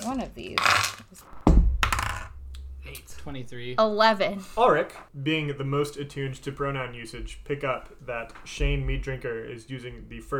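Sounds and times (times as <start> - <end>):
speech: 0.1 - 1.4, 2.9 - 10.3
dice rolled on a hard tabletop for a tabletop role-playing game: 0.6 - 1.1, 1.8 - 2.3.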